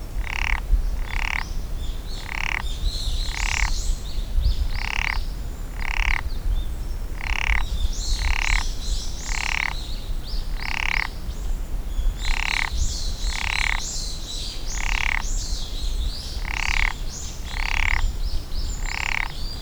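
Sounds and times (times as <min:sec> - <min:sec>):
Japanese wrinkled frog croaking at Tama Forest Science Garden: 0:00.1 - 0:04.0, 0:04.7 - 0:06.4, 0:07.1 - 0:11.3, 0:12.1 - 0:19.4.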